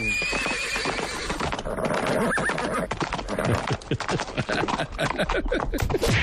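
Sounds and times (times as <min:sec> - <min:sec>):
horse whinnying loudly: 0:00.0 - 0:03.8
hoof clatter and heavy thuds of a horse falling: 0:00.0 - 0:06.0
laughter: 0:03.4 - 0:06.1.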